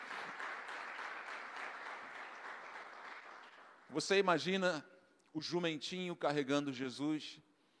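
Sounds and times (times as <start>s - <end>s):
audience applauding: 0.0s - 3.9s
speech: 3.9s - 7.5s.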